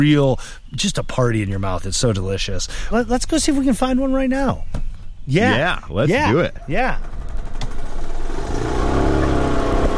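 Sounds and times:
speech: 0.0s - 7.3s
small golf cart driving between rows of cherry trees in an orchard: 5.6s - 9.9s.

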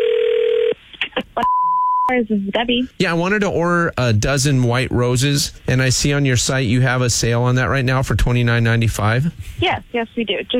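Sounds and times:
telephone dial tone: 0.0s - 0.8s
short dialing beeps: 1.4s - 2.1s
speech: 2.1s - 10.5s.

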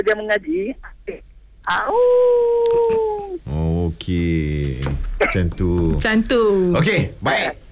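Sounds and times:
speech: 0.0s - 7.6s
faint noise: 0.0s - 7.7s
man imitating a wolf howl: 1.7s - 3.4s.

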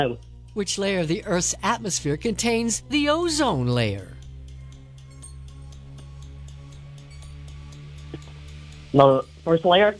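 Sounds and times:
speech: 0.0s - 4.2s, 8.9s - 9.9s
60-second quiz timer clock ticking: 0.0s - 9.9s
constant low electronic hum: 0.0s - 9.9s.

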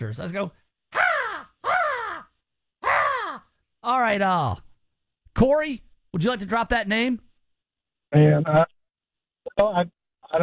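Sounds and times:
speech: 0.0s - 0.6s, 3.8s - 4.6s, 5.4s - 7.3s, 8.1s - 8.7s, 9.5s - 10.4s
voice imitating a crow cawing: 0.9s - 3.6s.

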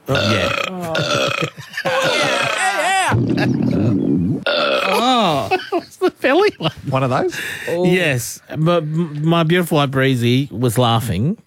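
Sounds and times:
long guttural burp imitated by a voice: 0.0s - 2.9s, 3.7s - 5.4s
speech: 0.1s - 1.6s, 6.6s - 11.4s
laughter: 0.1s - 4.0s, 4.9s - 6.9s.

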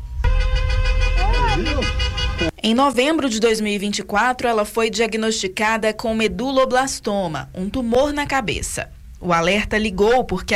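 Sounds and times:
car horns honking in stopped traffic: 0.0s - 2.6s
people's voices: 1.2s - 10.5s
speech: 1.6s - 10.5s.

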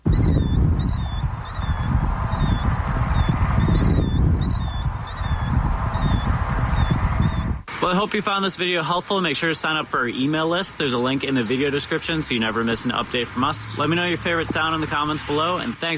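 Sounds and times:
killdeer calling: 0.0s - 7.6s, 10.0s - 15.7s
loud constant low rumble: 0.0s - 7.7s
speech: 7.8s - 15.9s.

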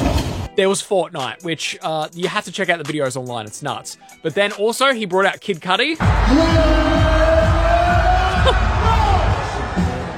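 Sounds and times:
speech: 0.6s - 7.4s, 8.4s - 8.7s
large stadium concert crowd cheering and yelling: 6.0s - 10.1s.

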